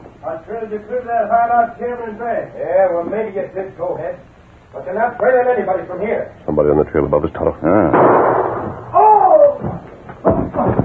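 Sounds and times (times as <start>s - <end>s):
speech: 0.3s - 8.9s
gunshots: 7.9s - 8.9s
falling whining ricochet: 7.9s - 9.8s.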